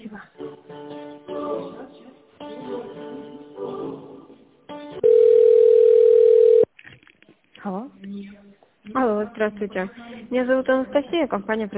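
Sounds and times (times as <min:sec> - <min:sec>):
telephone line tones during call transfer: 0:05.0 - 0:06.7
speech: 0:09.4 - 0:11.7.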